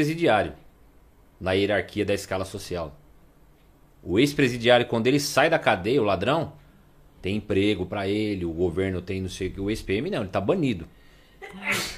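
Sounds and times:
speech: 0:00.0 - 0:00.6, 0:01.4 - 0:03.0, 0:04.0 - 0:06.6, 0:07.2 - 0:11.9
person sneezing: 0:11.4 - 0:11.9.

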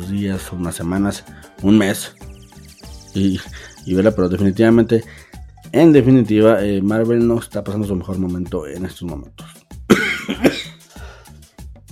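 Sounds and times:
speech: 0:00.1 - 0:02.3, 0:03.2 - 0:09.6
raspy breath: 0:05.0 - 0:05.5, 0:10.8 - 0:11.4
person coughing: 0:09.9 - 0:10.8.

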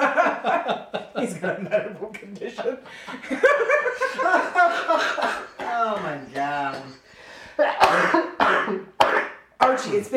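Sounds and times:
laughter: 0:00.0 - 0:08.8
speech: 0:00.7 - 0:05.4
harsh, throaty raspy coughs: 0:04.9 - 0:07.0, 0:07.6 - 0:09.4.

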